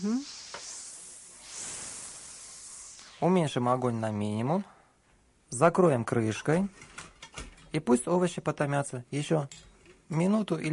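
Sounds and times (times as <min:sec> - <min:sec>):
speech: 0:00.0 - 0:00.4, 0:03.2 - 0:04.7, 0:05.5 - 0:07.1, 0:07.7 - 0:10.7
spice masala fried in oil sizzling as poured into soup: 0:00.0 - 0:03.6.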